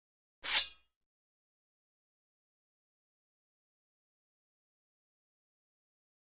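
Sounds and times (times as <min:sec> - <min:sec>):
fencing sword being drawn: 0:00.4 - 0:00.9.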